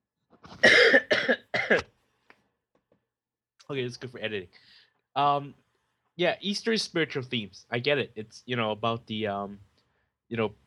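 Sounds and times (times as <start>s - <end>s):
person coughing: 0.6s - 1.9s
speech: 3.7s - 5.6s, 6.2s - 9.7s, 10.3s - 10.6s.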